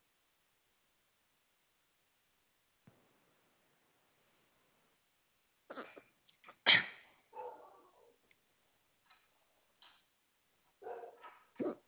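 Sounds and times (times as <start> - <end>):
border collie lab mix dog barking: 7.3 - 8.2, 10.8 - 11.8.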